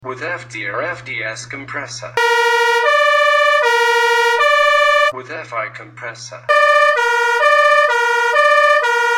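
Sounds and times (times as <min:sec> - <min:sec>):
fanfare horn: 0:02.2 - 0:05.1, 0:06.5 - 0:09.1.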